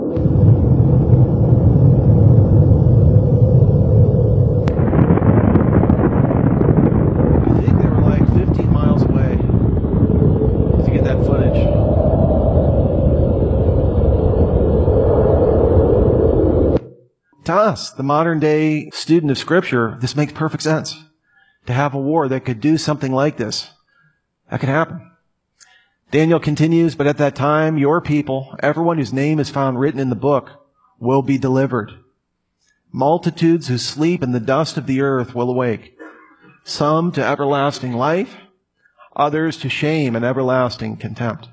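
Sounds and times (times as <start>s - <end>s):
thermonuclear bomb explosion rumble from test footage: 0.1s - 16.9s
speech: 17.7s - 21.1s, 21.7s - 23.8s, 24.5s - 25.1s, 26.1s - 32.0s, 32.9s - 36.0s, 36.6s - 38.4s, 39.2s - 41.5s.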